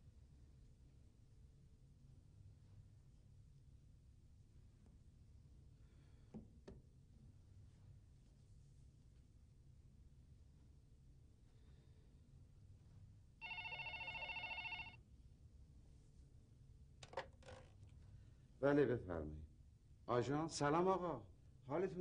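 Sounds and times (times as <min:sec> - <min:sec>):
telephone ringing in a buzzing burst: 0:13.4 - 0:15.0
speech: 0:18.6 - 0:19.5, 0:20.1 - 0:21.9.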